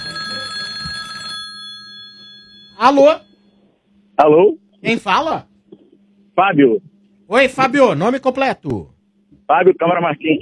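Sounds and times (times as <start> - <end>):
telephone ringing with a bright electronic trill: 0.0 - 3.6
speech: 2.8 - 3.3, 4.2 - 5.5, 6.4 - 8.9, 9.5 - 10.3.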